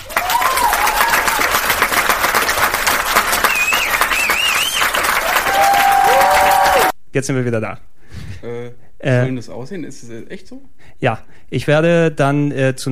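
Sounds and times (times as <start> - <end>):
faint cheers: 0.0 - 1.8, 3.4 - 7.0
large crowd applauding: 0.0 - 7.0
whistles: 3.4 - 6.6
speech: 7.2 - 8.0, 9.0 - 12.8.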